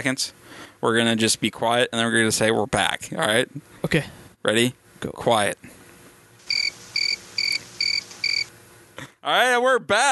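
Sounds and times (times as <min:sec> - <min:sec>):
speech: 0:00.0 - 0:05.8, 0:09.2 - 0:10.1
cricket chirps sound effect from a soundboard: 0:06.4 - 0:08.5.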